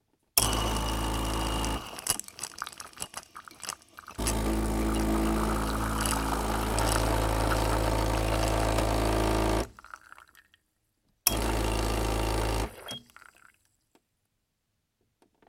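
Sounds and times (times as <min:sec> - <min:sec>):
coffee machine making espresso: 0:00.4 - 0:09.8, 0:11.3 - 0:12.8.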